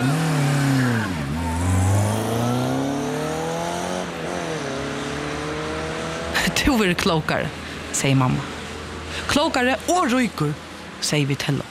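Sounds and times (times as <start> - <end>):
race car engine revving and accelerating through gear changes: 0.0 - 7.3
speech: 6.6 - 8.5, 9.2 - 11.7.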